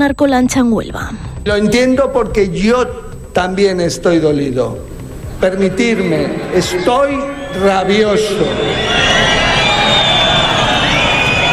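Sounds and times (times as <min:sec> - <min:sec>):
speech: 0:00.0 - 0:09.4
large crowd whistling: 0:04.8 - 0:11.5.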